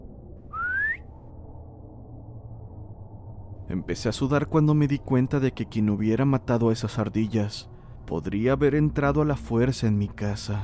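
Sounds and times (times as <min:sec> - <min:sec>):
low rumble: 0:00.0 - 0:10.6
whistle rising in pitch used to call a dog: 0:00.4 - 0:01.2
speech: 0:03.7 - 0:10.6.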